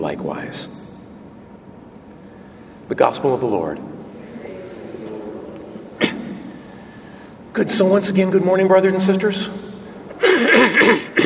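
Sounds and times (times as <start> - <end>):
speech: 0.5 - 0.8, 2.9 - 3.9, 7.6 - 9.7
man clearing his throat during a church sermon: 6.0 - 6.4, 10.1 - 11.2.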